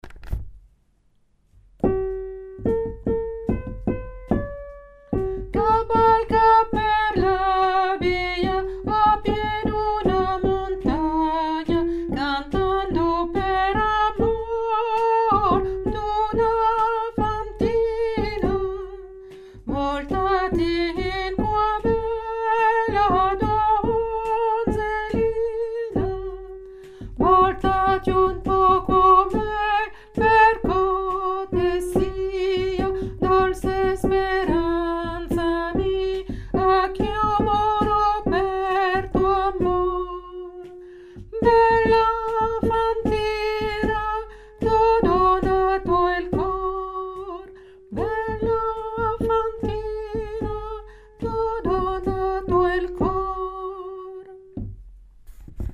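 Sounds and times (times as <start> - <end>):
soprano singing a chorale: 1.8 - 54.6.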